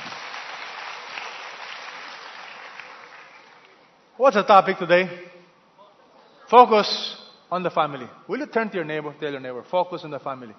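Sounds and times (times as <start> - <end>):
audience applause: 0.0 - 3.9
speech: 4.2 - 5.3, 6.5 - 10.5.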